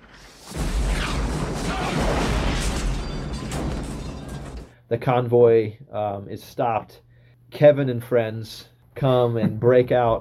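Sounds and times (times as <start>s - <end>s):
bazooka explosion: 0.0s - 4.7s
explosion debris noise: 0.0s - 4.7s
speech: 4.9s - 10.1s.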